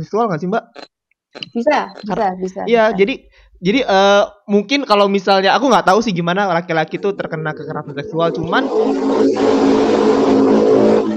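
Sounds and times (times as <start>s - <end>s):
speech: 0.0s - 10.2s
motorcycle engine droning: 6.9s - 11.1s.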